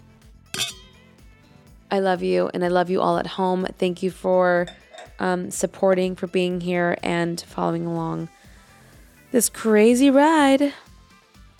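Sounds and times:
wine glasses clinking in a toast: 0:00.6 - 0:01.0, 0:04.6 - 0:05.2
speech: 0:01.9 - 0:08.4, 0:09.3 - 0:10.8.

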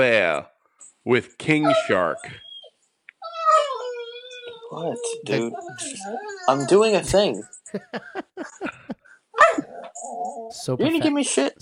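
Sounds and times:
speech: 0:00.0 - 0:02.4, 0:04.7 - 0:11.6
laughter: 0:07.1 - 0:09.1
dog barking short yappy barks: 0:09.4 - 0:09.7.

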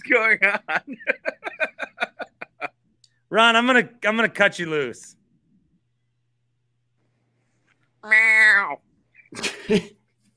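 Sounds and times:
speech: 0:00.0 - 0:01.4, 0:03.4 - 0:05.2, 0:08.0 - 0:10.0
laughter: 0:00.0 - 0:02.8, 0:09.3 - 0:10.0
cat meowing: 0:08.0 - 0:08.9.

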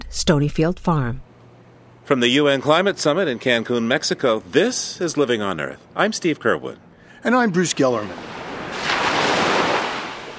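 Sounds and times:
speech: 0:00.1 - 0:01.2, 0:02.1 - 0:08.4
ocean waves crashing onto a beach in Cancun Mexico: 0:08.0 - 0:10.3.

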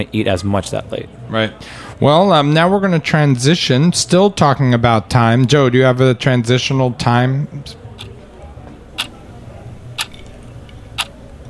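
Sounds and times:
speech: 0:00.0 - 0:07.8
low constant hum: 0:06.9 - 0:11.4
clock ticking: 0:08.9 - 0:09.2, 0:09.9 - 0:10.3, 0:10.9 - 0:11.2.

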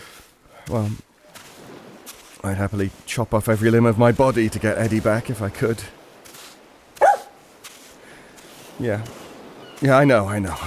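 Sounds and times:
speech: 0:00.7 - 0:01.1, 0:02.4 - 0:06.0, 0:08.8 - 0:09.2, 0:09.8 - 0:10.6
dog barking: 0:07.0 - 0:07.4.

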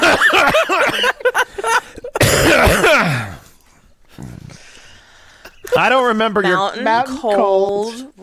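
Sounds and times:
laughter: 0:00.0 - 0:02.2, 0:05.4 - 0:06.4
harsh coughing: 0:00.0 - 0:03.6
throat clearing: 0:02.0 - 0:04.8
quiet breathing: 0:03.3 - 0:05.8
speech: 0:05.8 - 0:08.1.

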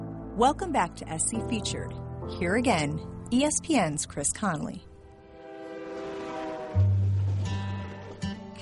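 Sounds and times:
speech: 0:00.4 - 0:04.9
train rumbling past in Calvert Texas: 0:04.8 - 0:08.6
train horn blast in Calvert Texas: 0:05.1 - 0:08.3.

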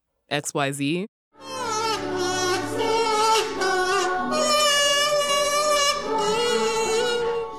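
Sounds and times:
speech: 0:00.3 - 0:01.2
buzzy kazoo playing a wavering melody: 0:01.4 - 0:07.5
penny whistle playing: 0:01.7 - 0:07.5.

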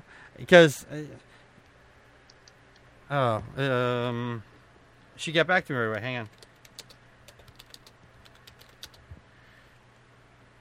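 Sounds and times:
speech: 0:00.4 - 0:01.3, 0:03.1 - 0:04.5, 0:05.2 - 0:06.4
typing on a computer keyboard: 0:06.2 - 0:09.0.

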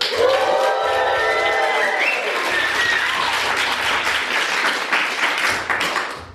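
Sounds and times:
live audience cheering with whoops and high shouts: 0:00.0 - 0:04.3
live audience dense steady clapping: 0:00.0 - 0:06.3.

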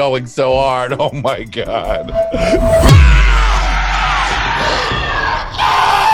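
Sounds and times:
speech: 0:00.0 - 0:03.5
monster roaring: 0:02.6 - 0:05.5.

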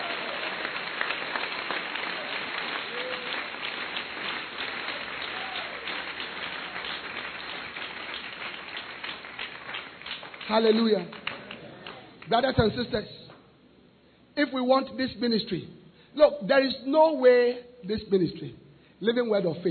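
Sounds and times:
audience clapping: 0:00.0 - 0:12.6
speech: 0:10.5 - 0:11.2, 0:12.3 - 0:13.2, 0:14.4 - 0:19.6.

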